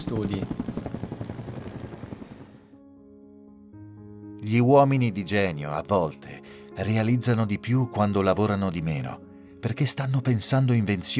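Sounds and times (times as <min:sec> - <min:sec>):
helicopter rotor chopping: 0:00.0 - 0:02.7
speech: 0:00.1 - 0:00.8, 0:04.4 - 0:11.1.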